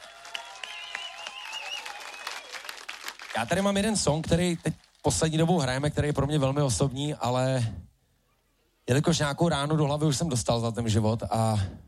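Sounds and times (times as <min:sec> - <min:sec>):
concert audience applauding: 0:00.0 - 0:05.2
speech: 0:03.4 - 0:07.9, 0:08.9 - 0:11.8.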